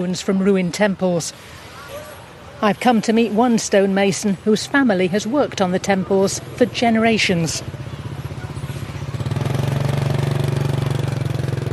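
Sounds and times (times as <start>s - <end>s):
speech: 0.0s - 1.7s, 2.6s - 7.9s
motorbike engine idling: 5.1s - 11.7s.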